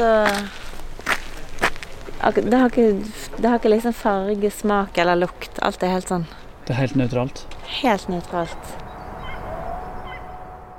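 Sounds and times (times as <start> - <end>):
speech: 0.0 - 0.6, 2.2 - 8.8
birds chirping at former concentration camp outside Berlin on sunny cool day: 3.0 - 10.7.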